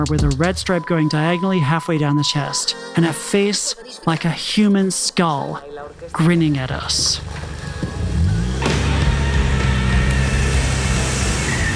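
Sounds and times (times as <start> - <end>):
speech: 0.0 - 7.4
car engine revving while reversing fast: 6.0 - 11.7
car tires spinning over loose dirt: 6.7 - 11.7.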